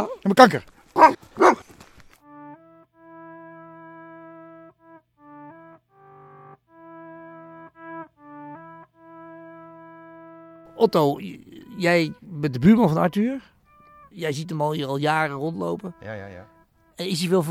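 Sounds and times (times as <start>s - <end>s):
speech: 0.2s - 1.6s, 10.8s - 13.5s, 14.1s - 17.4s
dog barking: 1.0s - 1.7s
steady buzzy electronic tones in short held notes: 2.2s - 17.4s.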